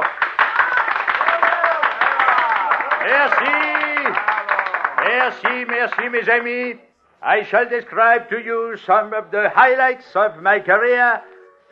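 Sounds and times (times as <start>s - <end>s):
crowd applauding: 0.0s - 6.5s
speech: 3.1s - 4.3s, 5.1s - 11.3s.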